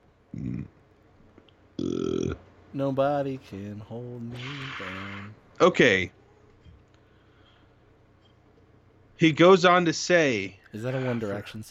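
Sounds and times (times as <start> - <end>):
person burping while trying to hold it down: 0.3 - 0.7, 1.8 - 2.4
speech: 2.8 - 6.2, 9.2 - 11.6.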